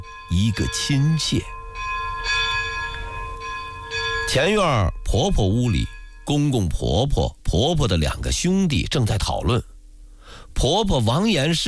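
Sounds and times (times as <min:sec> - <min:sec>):
speech: 0:00.0 - 0:01.6, 0:04.4 - 0:09.7, 0:10.6 - 0:11.6
large temple bell tolling: 0:00.0 - 0:07.0.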